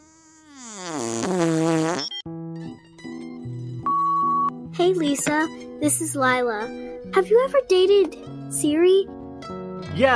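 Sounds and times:
buzzy fart sound effect: 0.0s - 2.2s
speech: 4.9s - 10.1s.

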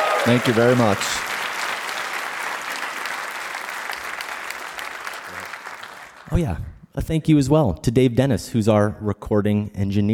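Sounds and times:
audience clapping at a live show: 0.0s - 6.3s
speech: 0.2s - 1.2s, 6.4s - 10.1s.

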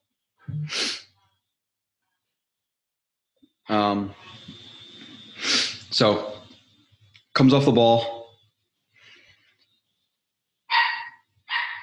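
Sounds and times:
speech: 0.6s - 1.0s, 3.7s - 4.4s, 5.4s - 6.4s, 7.4s - 8.2s
dog barking: 10.7s - 11.8s.

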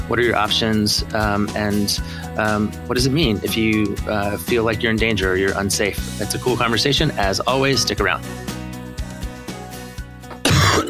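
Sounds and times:
speech: 0.1s - 8.5s
coughing: 10.3s - 10.8s
throat clearing: 10.3s - 10.8s.

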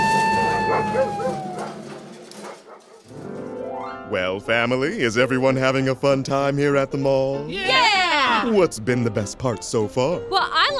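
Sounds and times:
golden retriever dogs high whining: 0.0s - 2.8s
golden retriever dogs barking and yipping off leash: 0.0s - 3.1s
speech: 4.1s - 7.8s, 8.4s - 10.7s.

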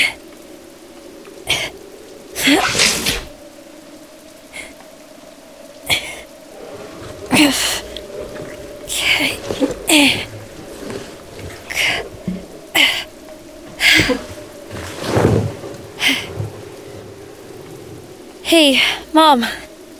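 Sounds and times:
steady rain hissing: 0.0s - 19.9s
low rumble: 5.9s - 19.2s
speech: 18.6s - 19.6s.

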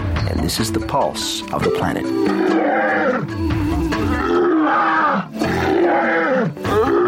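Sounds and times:
speech: 0.4s - 3.6s
pride of female lions roaring in Tanzania: 2.3s - 7.0s.

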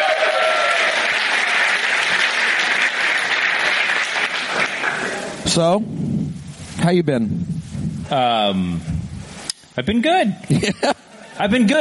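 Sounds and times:
audience clapping and cheering: 0.0s - 5.4s
speech: 5.5s - 9.0s, 9.8s - 11.8s.

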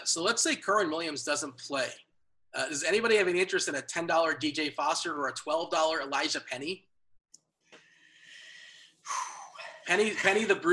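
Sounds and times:
speech: 0.1s - 6.9s, 9.9s - 10.7s
sudden loud gasp: 7.7s - 9.9s
long breathy intake of air: 7.8s - 9.9s.

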